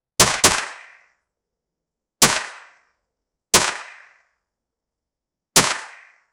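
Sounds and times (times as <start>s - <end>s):
machine gun ripping: 0.2s - 1.0s, 3.6s - 4.1s, 5.6s - 6.1s.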